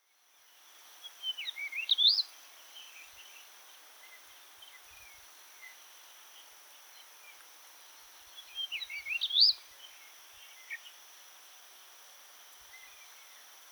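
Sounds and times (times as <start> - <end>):
background hiss: 0.0 - 13.7
Jerdon's bush chat singing: 1.0 - 5.8, 8.2 - 11.0.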